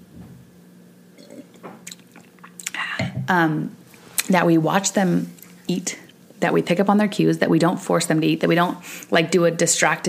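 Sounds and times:
person sipping a drink: 1.2s - 3.2s
swallowing: 1.2s - 3.3s
speech: 3.2s - 10.0s.

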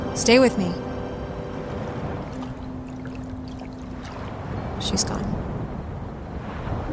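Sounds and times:
speech: 0.2s - 0.9s, 4.9s - 5.4s
boat being rowed across water: 1.3s - 6.7s.

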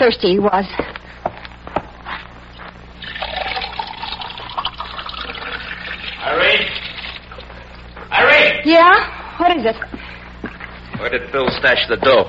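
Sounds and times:
speech: 0.0s - 1.0s, 8.6s - 10.0s, 11.0s - 12.2s
water from a faucet filling a glass: 3.0s - 7.4s.

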